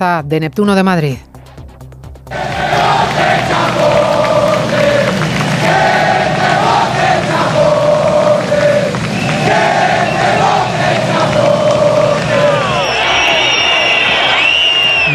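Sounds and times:
speech: 0.0 - 1.3
large outdoor crowd whistling, booing and shouting: 2.3 - 15.1
shrill whistles: 9.0 - 11.0, 12.1 - 15.1.

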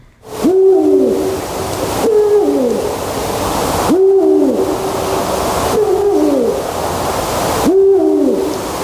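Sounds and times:
eagle owl hooting: 0.2 - 3.2, 3.8 - 6.8, 7.6 - 8.7.

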